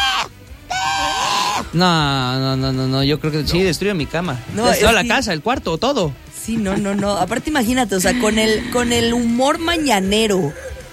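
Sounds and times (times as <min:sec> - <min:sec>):
voice imitating a crazy goat's scream: 0:00.0 - 0:01.8
speech: 0:01.7 - 0:10.7.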